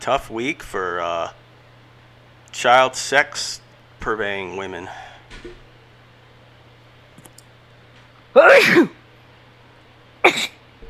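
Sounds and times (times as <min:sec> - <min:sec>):
speech: 0:00.0 - 0:01.4, 0:02.5 - 0:05.6, 0:08.4 - 0:09.0
person imitating a sneeze as a joke: 0:08.3 - 0:09.0, 0:10.2 - 0:10.6.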